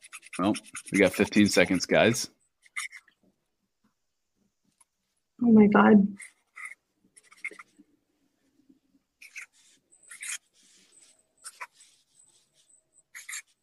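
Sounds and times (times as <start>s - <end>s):
pencil scratching on paper while drawing: 0.0s - 3.1s, 6.2s - 7.8s, 9.2s - 13.6s
speech: 0.1s - 2.4s, 5.4s - 6.3s.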